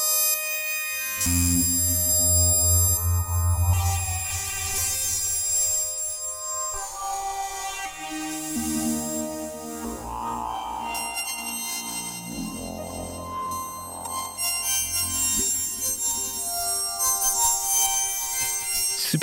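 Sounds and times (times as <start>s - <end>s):
shimmering metallic modular synth tones through granular delay: 0.9s - 19.0s
sustained drones: 1.1s - 16.6s
low rumbling bass: 1.2s - 6.0s.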